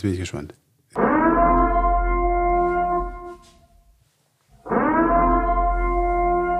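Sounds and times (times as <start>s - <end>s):
speech: 0.0s - 0.6s
electronic siren tone: 1.0s - 3.8s, 4.6s - 6.5s.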